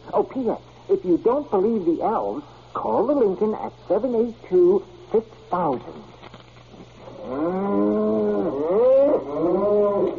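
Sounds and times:
speech: 0.1 - 6.2
cow mooing: 7.2 - 10.1.

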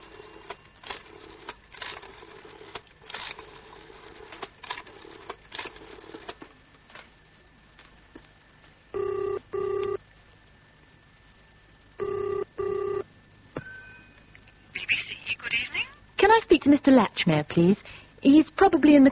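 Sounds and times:
telephone ringing tone heard down the line: 8.9 - 10.0, 12.0 - 13.1
speech: 16.6 - 19.1.

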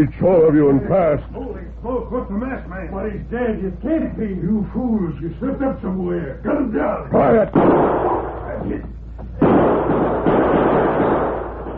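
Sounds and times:
speech: 0.0 - 11.2
dense hissy noise: 0.0 - 11.7
gunshots from two crooks firing guns while running: 7.4 - 8.4, 9.4 - 11.7.

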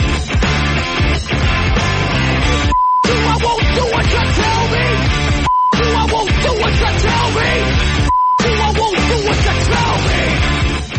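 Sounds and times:
loud driving rock song with shouted vocals: 0.0 - 10.9
short steady censor beeps: 2.6 - 3.3, 5.4 - 6.0, 8.0 - 8.5.

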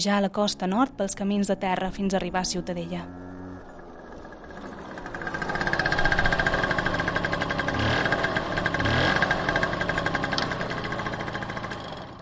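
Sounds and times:
speech: 0.0 - 3.3
small scooter engine idling: 2.8 - 12.2.

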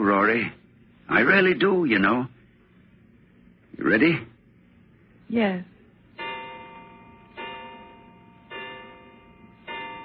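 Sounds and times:
speech: 0.1 - 2.4, 3.8 - 4.3, 5.3 - 5.7
clock striking eleven o'clock: 6.2 - 10.0.

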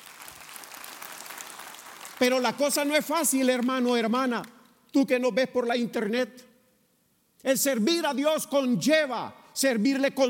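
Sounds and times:
audience at a church service applauding: 0.0 - 3.8
speech: 2.2 - 6.5, 7.4 - 10.2.

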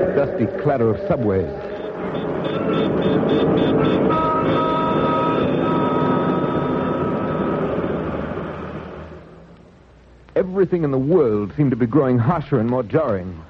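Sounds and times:
dense roaring street din: 0.0 - 13.4
speech: 0.2 - 1.7, 2.7 - 5.6, 10.4 - 13.4
car horns honking: 1.6 - 9.0.

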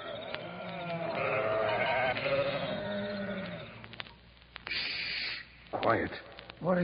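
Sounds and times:
sheep bleating in a long wavering cry: 0.0 - 3.9
speech: 5.8 - 6.8.

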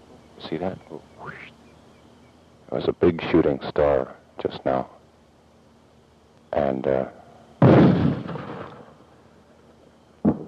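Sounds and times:
speech: 0.5 - 1.6, 2.7 - 5.0, 6.5 - 8.0
mortar firing in Vietnam: 7.6 - 9.0.

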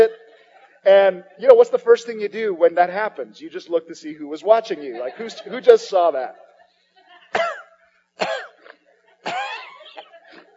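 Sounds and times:
speech: 0.8 - 6.5
laughter: 4.6 - 7.4, 9.0 - 10.5
person harshly coughing with something caught in the throat: 7.3 - 10.5
person clearing throat with something caught in it: 7.4 - 10.5.

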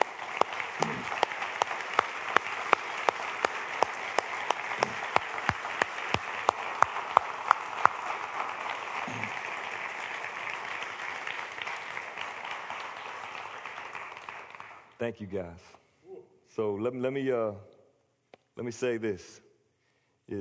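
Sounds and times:
church audience applauding in a large room: 0.0 - 15.0
speech: 15.0 - 15.8, 16.6 - 17.7, 18.6 - 19.4.

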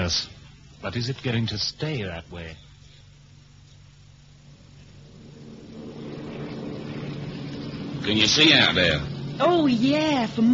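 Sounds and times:
speech: 0.1 - 2.7, 8.0 - 10.5
propeller plane engine droning in flight over the Alps: 4.2 - 10.5.

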